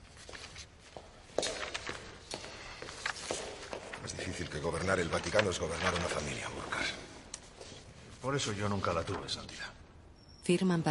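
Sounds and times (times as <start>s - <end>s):
footsteps of a man walking away: 0.0s - 4.4s
speech: 4.6s - 7.0s, 8.2s - 9.8s, 10.4s - 10.8s.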